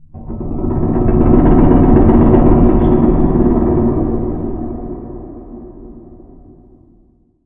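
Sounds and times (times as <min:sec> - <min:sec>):
clanging ambience: 0:00.1 - 0:07.0.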